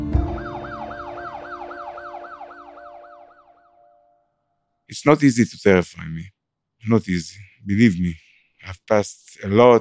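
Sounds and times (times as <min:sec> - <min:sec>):
ambulance siren wailing: 0:00.2 - 0:04.2
speech: 0:04.9 - 0:09.7.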